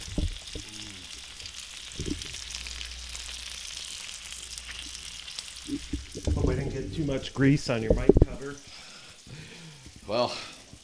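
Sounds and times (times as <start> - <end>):
low thumps and knocks: 0.0 - 0.7, 2.0 - 2.3, 5.7 - 7.2, 7.8 - 8.4
bacon frying in a pan: 0.0 - 10.8
speech: 6.8 - 8.7, 10.1 - 10.5.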